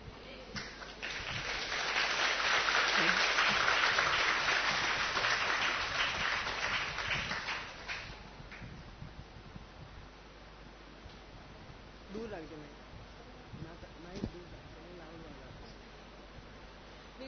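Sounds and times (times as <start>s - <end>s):
crowd clapping: 0.6s - 8.7s.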